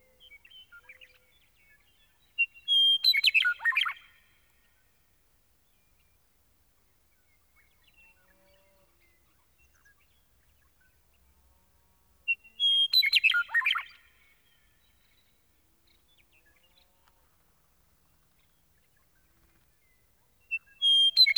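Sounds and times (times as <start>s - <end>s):
meadowlark singing: 0.2s - 4.1s, 12.3s - 14.1s, 20.5s - 21.3s.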